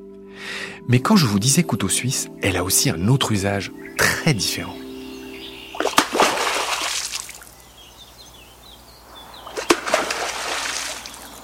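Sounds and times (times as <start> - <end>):
speech: 0.9 - 4.8
beaver slapping its tail on water as an alarm signal: 5.7 - 7.6, 9.4 - 11.4.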